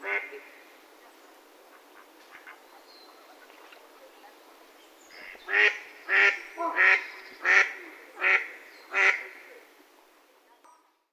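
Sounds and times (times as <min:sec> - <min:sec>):
mallard giving harsh nasal quacks: 0:00.0 - 0:00.5, 0:01.7 - 0:02.6, 0:05.2 - 0:09.5.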